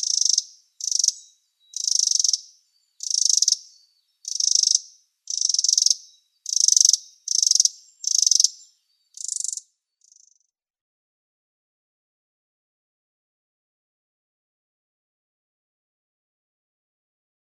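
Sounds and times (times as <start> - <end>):
Winter Wren chattering calls: 0.0 - 10.5.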